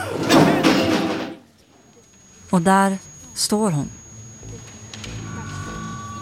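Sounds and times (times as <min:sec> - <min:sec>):
heavy door swinging open with thuds and rattling creak: 0:00.1 - 0:01.4
speech: 0:02.5 - 0:04.6.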